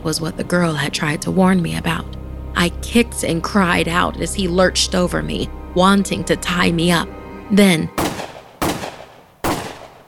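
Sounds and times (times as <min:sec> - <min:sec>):
speech: 0:00.0 - 0:08.0
gunshots: 0:08.0 - 0:10.0.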